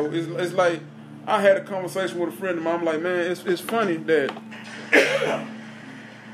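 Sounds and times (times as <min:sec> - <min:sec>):
speech: 0:00.0 - 0:05.5
low steady hum: 0:00.0 - 0:06.3
short harsh cough: 0:04.9 - 0:05.5.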